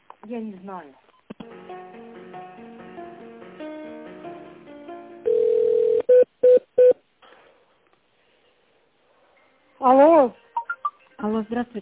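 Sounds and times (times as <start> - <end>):
speech: 0.2 - 2.5, 11.4 - 11.8
steady telephone line tone: 5.2 - 7.0
telephone electronic hold melody during a call transfer: 10.6 - 11.0.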